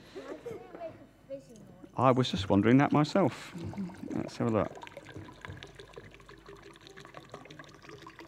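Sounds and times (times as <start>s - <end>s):
speech: 2.0s - 4.8s
still water pouring from a bottle into a big glass: 2.6s - 8.2s.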